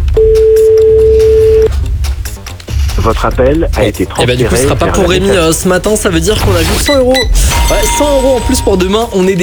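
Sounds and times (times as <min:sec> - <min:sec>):
ringback tone from an outgoing phone call: 0:00.2 - 0:01.7
speech: 0:03.1 - 0:09.4.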